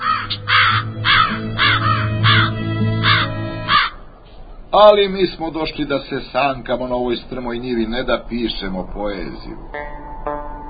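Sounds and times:
crows cawing in harsh rasping bursts: 0:00.0 - 0:04.2
speech: 0:04.8 - 0:10.1.

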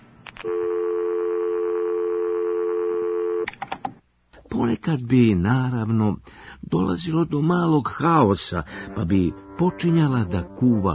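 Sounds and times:
telephone dial tone: 0:00.4 - 0:03.5
speech: 0:04.6 - 0:10.9.

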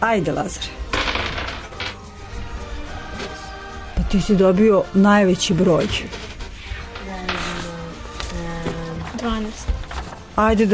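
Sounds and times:
speech: 0:00.0 - 0:00.9, 0:04.1 - 0:06.2, 0:10.4 - 0:10.7
dice tossed and tumbling across a game board: 0:00.9 - 0:02.0.

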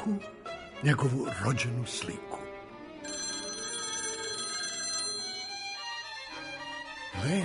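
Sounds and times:
speech: 0:00.0 - 0:02.4, 0:07.2 - 0:07.4
telephone bell ringing: 0:03.0 - 0:07.0.

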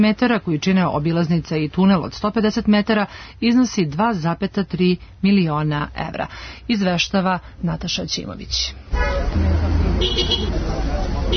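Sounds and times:
speech: 0:00.0 - 0:11.3
steady low rumble of traffic in a road tunnel: 0:00.0 - 0:11.3
car horns honking in greeting in a road tunnel: 0:08.9 - 0:11.3.

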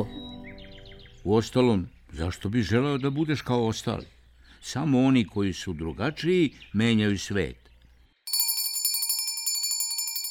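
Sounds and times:
speech: 0:01.2 - 0:07.7
school bell ringing for the start of class: 0:08.3 - 0:10.2.

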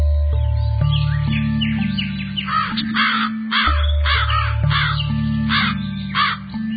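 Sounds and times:
sustained low musical backing: 0:00.0 - 0:06.7
raven cawing: 0:02.5 - 0:06.7.

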